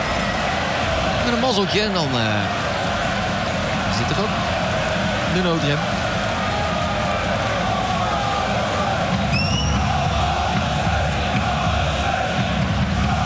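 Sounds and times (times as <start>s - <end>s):
large stadium crowd at a football match cheering and chanting: 0.0s - 13.2s
speech: 1.3s - 2.6s, 3.9s - 4.6s, 5.3s - 6.0s
short shrill whistle: 9.3s - 9.8s.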